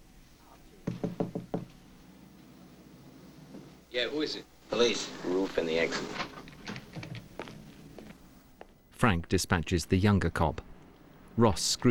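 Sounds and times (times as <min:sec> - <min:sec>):
knocks on a hotel room door: 0:00.8 - 0:01.8
speech: 0:03.9 - 0:06.3, 0:09.0 - 0:10.7, 0:11.4 - 0:11.8.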